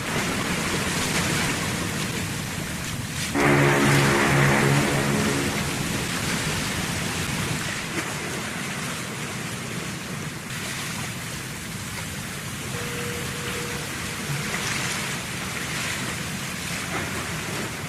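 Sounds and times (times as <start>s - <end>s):
water lapping in the harbour at the port of Bordeaux: 0.0s - 17.8s
low droning horn-like tone in the harbour at the port of Bordeaux: 3.3s - 6.9s, 12.7s - 14.7s.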